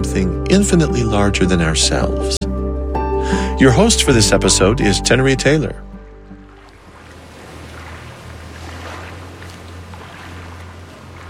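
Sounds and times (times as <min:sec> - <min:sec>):
speech: 0:00.0 - 0:02.5, 0:03.3 - 0:05.9
steady low engine-like drone: 0:01.9 - 0:11.2
river water lapping and splashing: 0:06.0 - 0:11.2
soft wash of wind: 0:06.0 - 0:11.2.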